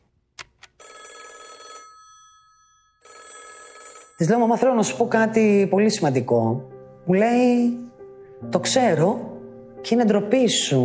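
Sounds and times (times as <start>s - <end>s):
telephone ringing with trilling bell tone: 0.8s - 4.8s
speech: 4.2s - 10.8s.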